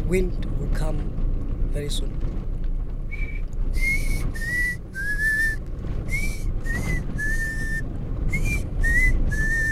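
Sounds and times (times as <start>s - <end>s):
steady low rumble: 0.0s - 9.7s
speech: 0.1s - 2.4s
person whistling short breathy notes imitating a pangolin's whistle: 3.1s - 9.7s.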